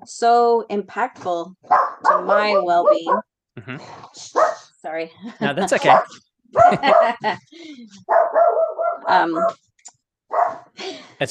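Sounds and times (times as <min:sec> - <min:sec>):
speech: 0:00.0 - 0:09.7, 0:10.3 - 0:11.2
female dog barking and howling at a passing airplane: 0:01.7 - 0:03.2, 0:04.3 - 0:04.7, 0:05.8 - 0:07.4, 0:08.1 - 0:09.6, 0:10.3 - 0:11.2
laughter: 0:05.2 - 0:06.0, 0:06.6 - 0:07.9.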